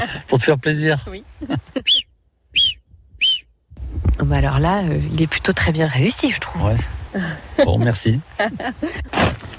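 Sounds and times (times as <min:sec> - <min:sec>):
speech: 0:00.0 - 0:02.1, 0:04.2 - 0:09.4
laughter: 0:01.4 - 0:01.9
person imitating a marmot's alarm whistle: 0:01.8 - 0:02.0, 0:02.6 - 0:03.5.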